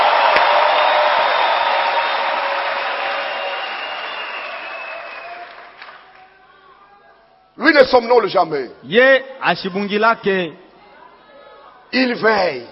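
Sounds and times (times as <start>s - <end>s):
church congregation applauding: 0.0s - 6.5s
speech: 7.9s - 10.6s, 11.9s - 12.6s.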